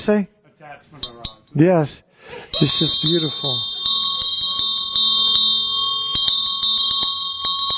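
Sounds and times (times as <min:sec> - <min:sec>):
speech: 0:00.0 - 0:03.8
Tibetan ritual hand bell ringing: 0:02.5 - 0:07.7.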